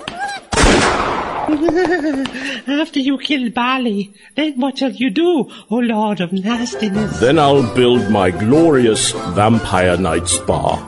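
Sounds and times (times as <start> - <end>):
loud gunshot: 0.5 - 1.7
laughter: 1.5 - 2.7
speech: 1.5 - 10.8.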